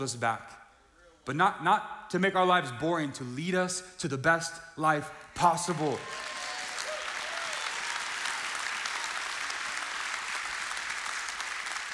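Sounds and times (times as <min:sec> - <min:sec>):
speech: 0:00.0 - 0:00.6, 0:01.3 - 0:06.3
large audience clapping: 0:05.2 - 0:11.9.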